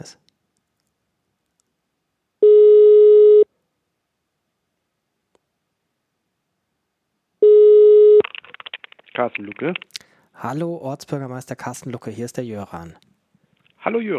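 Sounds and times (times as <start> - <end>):
speech: 0.0 - 0.2, 9.2 - 13.1, 13.8 - 14.1
telephone ringing tone while placing a call to a municipal administration office: 2.4 - 3.5, 7.4 - 8.2.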